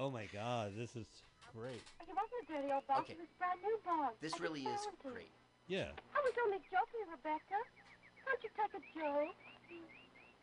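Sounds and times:
speech: 0.0s - 10.0s
bird chirping: 2.0s - 4.7s, 6.2s - 10.4s.

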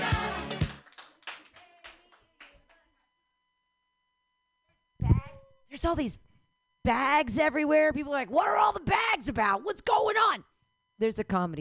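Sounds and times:
hand clapping: 0.1s - 2.8s
speech: 5.8s - 11.6s.

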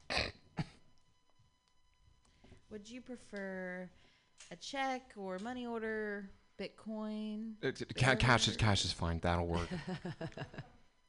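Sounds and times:
person coughing: 0.0s - 0.9s
speech: 2.7s - 10.8s
laughter: 9.5s - 10.8s.

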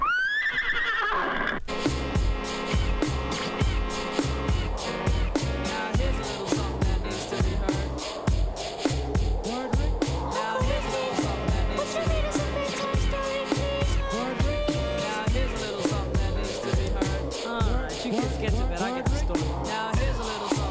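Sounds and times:
sick horse whinnying: 0.0s - 1.7s
upbeat music with a steady, driving beat: 1.7s - 20.6s.

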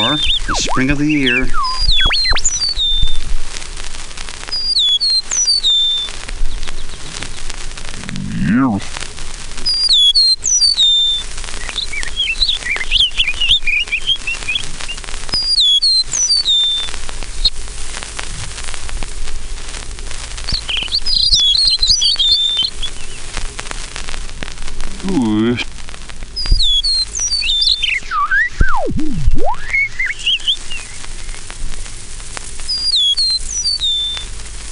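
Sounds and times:
eastern meadowlark on a telegraph pole singing whistled phrases: 0.0s - 3.3s, 4.5s - 7.5s, 9.6s - 17.5s, 20.5s - 23.3s, 26.4s - 31.5s, 32.6s - 34.3s
steady outdoor hum: 0.0s - 34.7s
speech: 0.2s - 1.9s.

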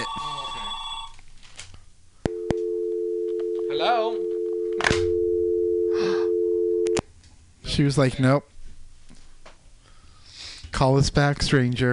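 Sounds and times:
telephone ringing with brief electronic ring tones: 0.0s - 1.2s, 2.3s - 7.0s
low hum: 0.0s - 10.3s
speech: 7.8s - 8.5s, 10.8s - 11.9s.

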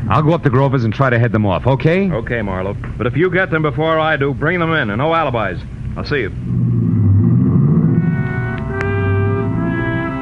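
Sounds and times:
speech: 0.1s - 6.8s
car engine roaring as the car pulls away quickly: 5.8s - 10.0s.

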